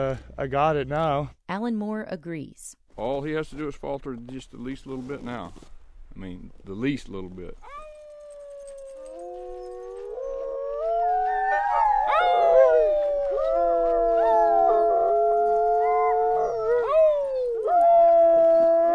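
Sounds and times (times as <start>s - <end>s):
speech: 0.0s - 7.8s
sled dogs howling in chorus: 7.7s - 18.9s.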